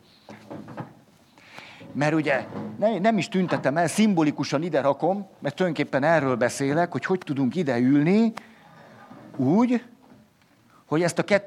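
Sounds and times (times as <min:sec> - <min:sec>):
chair shifted and set down by a speaker, scraping and bumping: 0:00.3 - 0:01.1, 0:01.8 - 0:04.0
speech: 0:02.0 - 0:08.5, 0:09.4 - 0:09.9, 0:10.9 - 0:11.4.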